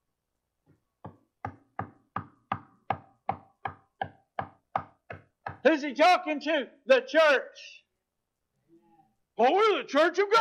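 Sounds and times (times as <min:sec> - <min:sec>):
knocking on a door: 0:01.0 - 0:05.7
speech: 0:05.6 - 0:07.8, 0:09.4 - 0:10.4.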